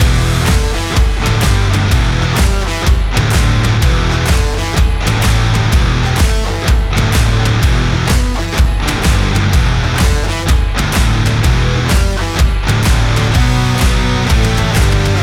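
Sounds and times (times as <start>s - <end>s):
library rock music: 0.0s - 15.2s.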